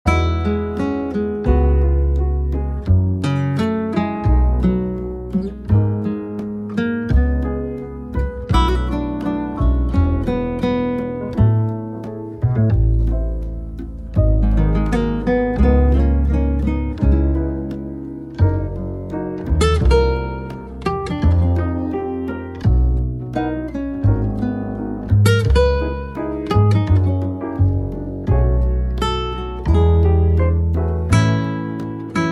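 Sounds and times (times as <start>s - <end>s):
ambient instrumental jazz music: 0.1s - 32.2s.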